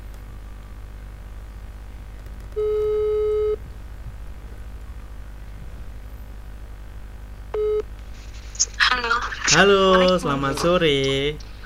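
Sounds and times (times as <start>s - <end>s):
telephone ringback tone while placing a phone call: 2.6s - 3.6s, 7.6s - 7.8s
speech: 9.5s - 11.5s.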